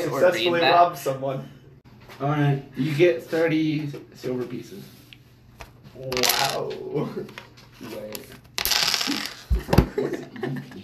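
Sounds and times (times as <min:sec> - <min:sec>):
speech: 0:00.1 - 0:05.0, 0:06.0 - 0:08.4, 0:09.6 - 0:10.8
dice clattering on a tabletop: 0:06.1 - 0:06.8, 0:08.1 - 0:09.6
laughter: 0:09.6 - 0:10.8.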